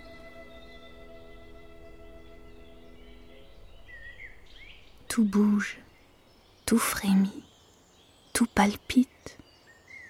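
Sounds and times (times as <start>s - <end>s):
blackbird giving agitated calls: 2.5s - 6.8s
speech: 5.2s - 5.8s, 6.7s - 7.5s, 8.4s - 9.4s.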